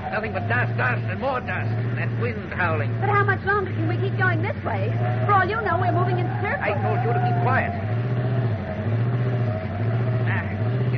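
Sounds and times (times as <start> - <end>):
overloaded car engine rumbling: 0.0 - 10.9
speech: 0.1 - 8.0.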